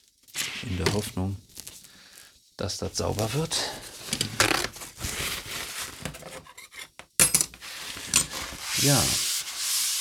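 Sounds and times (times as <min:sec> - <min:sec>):
speech: 0:00.6 - 0:01.5, 0:02.6 - 0:04.5, 0:08.8 - 0:09.2
scrubbing a green cutting mat with dish soap: 0:04.9 - 0:06.4, 0:07.6 - 0:10.0.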